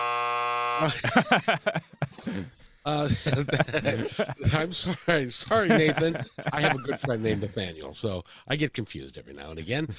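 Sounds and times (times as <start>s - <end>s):
electronic buzzer: 0.0s - 0.9s
person chuckling: 0.8s - 7.6s
speech: 0.8s - 9.9s.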